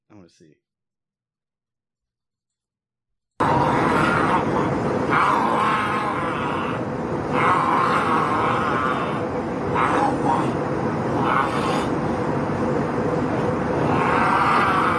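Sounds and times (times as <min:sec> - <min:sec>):
speech: 0:00.3 - 0:00.7
middle-aged man growling and groaning: 0:03.4 - 0:12.0, 0:13.7 - 0:14.9
steady roar of airplane cabin noise: 0:03.4 - 0:14.9.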